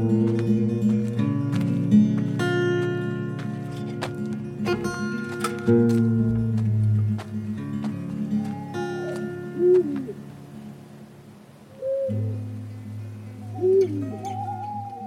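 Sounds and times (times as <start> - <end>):
steady low nighttime hum: 0.0 - 15.0
owl hooting at night: 8.3 - 10.2, 11.7 - 12.5, 13.3 - 15.0.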